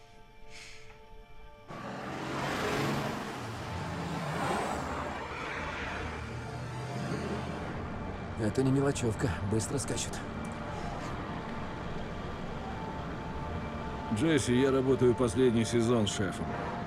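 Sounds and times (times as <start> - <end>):
cars driving in a row along a dusty road: 1.7 - 16.8
speech: 8.4 - 10.4, 14.2 - 16.8.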